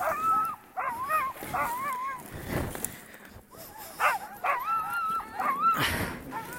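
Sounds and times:
sled dogs barking and yipping at the sled: 0.0s - 2.3s, 3.6s - 6.5s.

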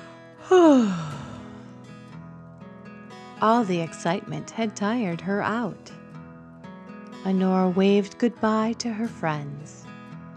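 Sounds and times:
voice imitating a big yawn: 0.4s - 1.6s
speech: 0.5s - 1.0s, 3.4s - 6.0s, 7.2s - 9.9s.

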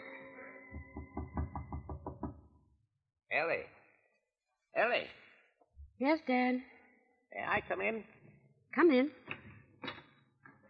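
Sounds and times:
knocking on a wooden door: 0.8s - 2.5s
speech: 3.4s - 3.8s, 4.8s - 5.2s, 6.0s - 6.7s, 7.4s - 8.2s, 8.8s - 9.2s.

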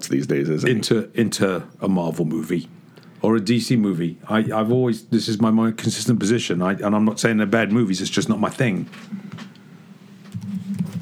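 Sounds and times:
speech: 0.0s - 9.5s
computer keyboard typing: 10.3s - 11.0s.

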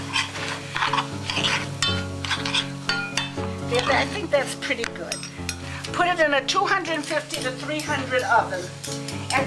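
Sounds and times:
utensil clinking against a pan: 0.0s - 4.2s, 5.0s - 5.7s, 6.9s - 9.4s
faint sizzle: 0.0s - 9.4s
spoon stirring kasha grains in a pan to coat them in egg: 0.0s - 9.4s
speech: 3.8s - 5.3s, 5.9s - 9.4s.

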